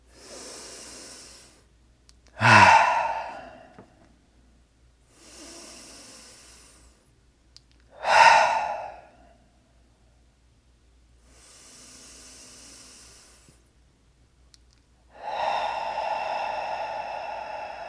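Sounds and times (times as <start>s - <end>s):
deep breathing during a relaxation meditation: 0.0s - 1.7s, 2.3s - 4.0s, 5.1s - 7.1s, 7.9s - 9.5s, 11.2s - 13.7s, 15.1s - 17.8s.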